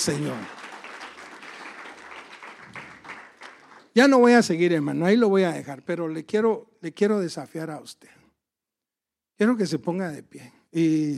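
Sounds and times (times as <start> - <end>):
speech: 0.0 - 0.6, 4.0 - 8.2, 9.4 - 11.1
audience applauding in a large room: 0.0 - 4.4.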